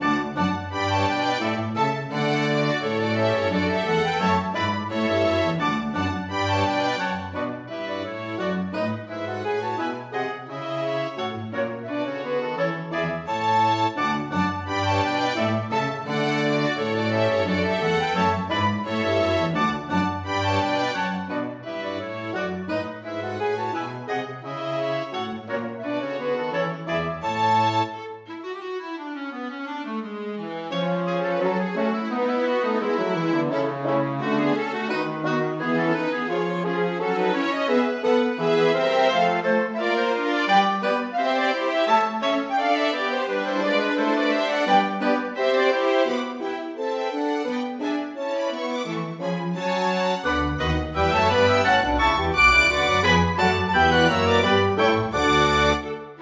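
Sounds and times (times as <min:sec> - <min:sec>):
small orchestra playing a gavotte: 0:00.0 - 0:56.2.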